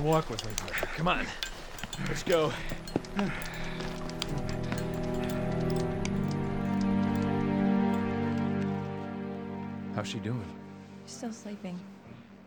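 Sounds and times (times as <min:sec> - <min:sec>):
speech: 0:00.0 - 0:03.9, 0:10.0 - 0:12.0
hail pattering down in a storm: 0:00.0 - 0:08.8
low sustained humming drone: 0:01.8 - 0:12.4.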